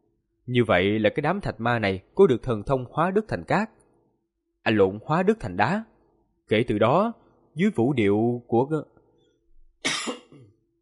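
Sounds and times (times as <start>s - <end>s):
speech: 0.5s - 3.8s, 4.6s - 5.9s, 6.5s - 8.9s
phlegmy cough from someone with mucus in the throat: 9.8s - 10.6s.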